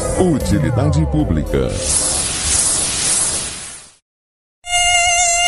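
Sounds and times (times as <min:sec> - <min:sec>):
speech: 0:00.2 - 0:02.1
hissing static: 0:01.3 - 0:04.1
Aedes aegypti mosquito whining buzz: 0:04.7 - 0:05.4.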